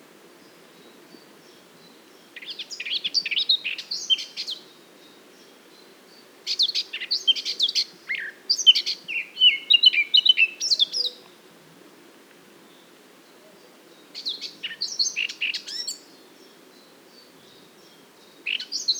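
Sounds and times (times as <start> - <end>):
Eurasian blackcap Sylvia atricapilla song warble: 0.4 - 11.2, 12.6 - 18.9.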